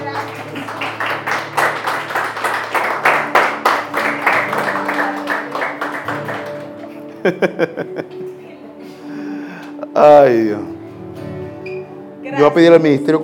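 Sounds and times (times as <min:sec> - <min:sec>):
audience applauding: 0:00.0 - 0:07.4
laughter: 0:06.8 - 0:08.4
speech: 0:07.2 - 0:08.4, 0:10.0 - 0:10.7, 0:12.4 - 0:13.2.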